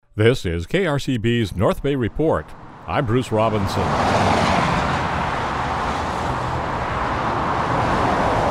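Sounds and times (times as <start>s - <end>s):
speech: 0.2s - 4.4s
highway traffic, cars rushing past: 0.3s - 8.4s.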